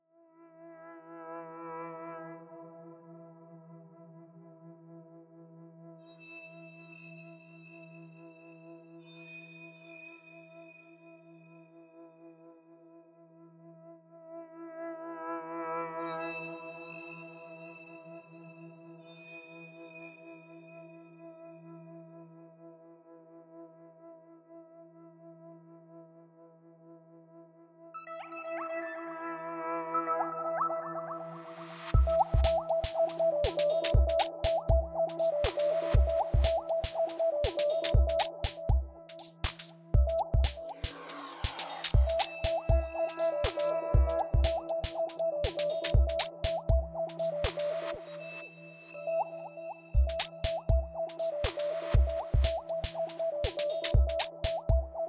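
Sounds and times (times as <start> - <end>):
electronica soundscape: 28.0 - 55.0.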